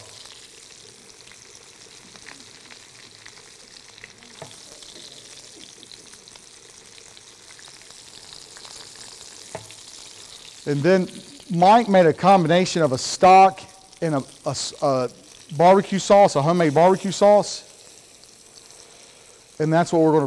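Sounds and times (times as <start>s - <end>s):
paprika-seasoned meat sizzling in a pan after being flipped: 0.0s - 20.2s
speech: 10.7s - 17.7s, 19.6s - 20.2s.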